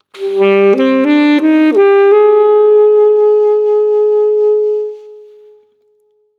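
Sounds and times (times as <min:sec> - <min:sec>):
improvised saxophone: 0:00.0 - 0:05.9.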